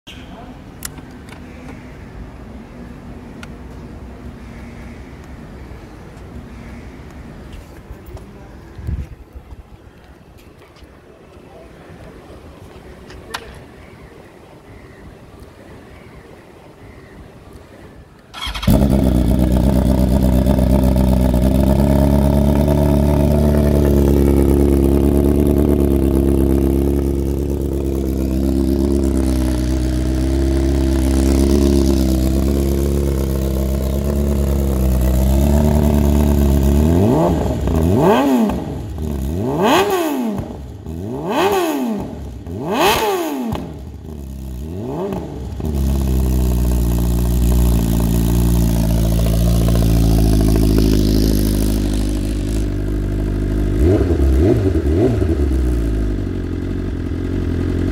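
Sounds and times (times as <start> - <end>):
loud BMW S1000RR motorcycle with Akrapovic GP exhaust spitting flames: 18.3 - 57.9.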